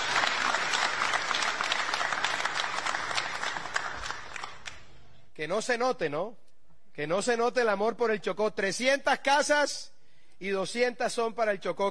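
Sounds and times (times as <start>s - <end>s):
crowd applause with dense overlapping clapping: 0.0s - 4.8s
speech: 5.4s - 6.4s, 7.0s - 11.8s.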